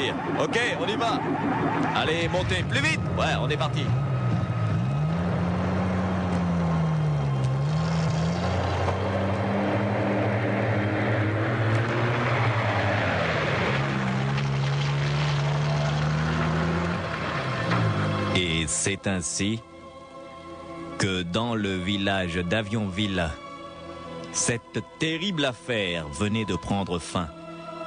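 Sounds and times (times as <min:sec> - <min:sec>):
heavy military truck engines revving and shifting gears: 0:00.0 - 0:18.8
speech: 0:00.1 - 0:04.1, 0:18.6 - 0:19.7, 0:21.0 - 0:23.4, 0:24.4 - 0:27.4.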